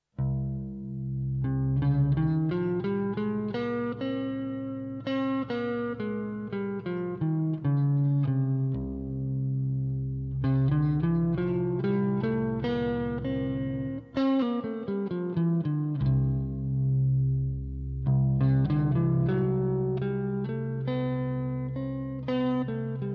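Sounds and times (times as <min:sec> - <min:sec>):
scales in C phrygian, mixolydian and lydian modes: 0:00.2 - 0:23.1.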